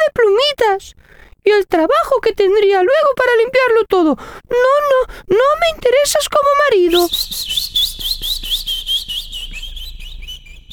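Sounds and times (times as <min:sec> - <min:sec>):
speech: 0:00.1 - 0:07.8
small bird chirping and tweeting: 0:06.9 - 0:10.7.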